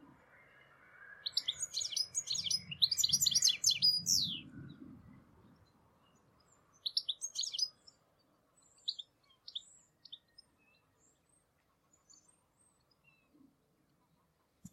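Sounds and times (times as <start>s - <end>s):
high sharp bird chirps: 1.2s - 4.5s, 6.8s - 7.8s.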